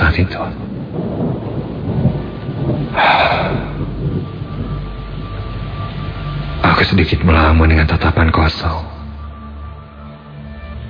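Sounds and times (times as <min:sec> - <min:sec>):
strong wind in a storm: 0:00.0 - 0:07.6
thunder rumbling: 0:00.0 - 0:10.0
heavy rain in a storm: 0:00.0 - 0:10.8
speech: 0:00.2 - 0:01.0, 0:06.8 - 0:08.9.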